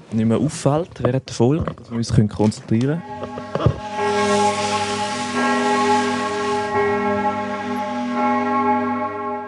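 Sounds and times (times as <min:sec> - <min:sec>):
speech: 0:00.1 - 0:03.9
church bells ringing through an open window: 0:02.8 - 0:09.4
steady hum: 0:03.0 - 0:09.4.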